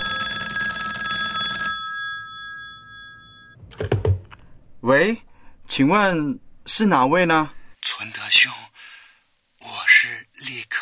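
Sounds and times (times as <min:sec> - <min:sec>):
telephone bell ringing with a rapid metallic trill: 0:00.0 - 0:03.6
clunk like a telephone receiver being lifted: 0:03.6 - 0:04.4
speech: 0:04.8 - 0:08.6.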